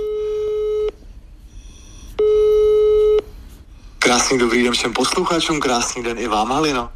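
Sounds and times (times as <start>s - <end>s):
phone line ringback tone: 0.0s - 1.0s, 2.2s - 3.3s
speech: 4.2s - 6.9s.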